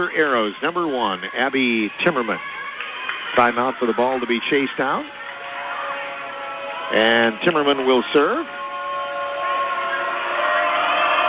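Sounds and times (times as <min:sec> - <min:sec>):
speech: 0:00.0 - 0:02.6, 0:03.3 - 0:05.2, 0:06.9 - 0:08.6
referee's whistle at a volleyball match: 0:03.3 - 0:11.2.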